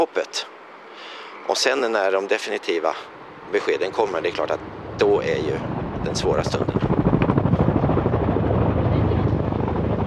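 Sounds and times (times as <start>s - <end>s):
speech: 0.0s - 0.6s, 1.5s - 6.9s
helicopter engine roar: 3.1s - 10.0s
helicopter rotor thumping: 4.3s - 10.0s.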